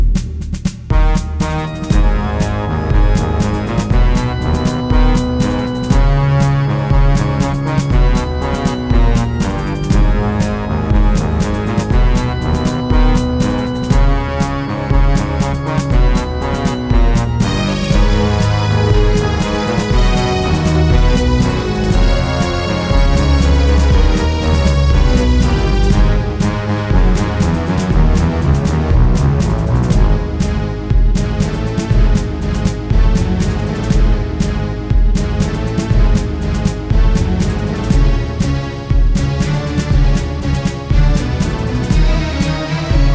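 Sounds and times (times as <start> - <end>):
accompaniment music: 0.2 - 43.1.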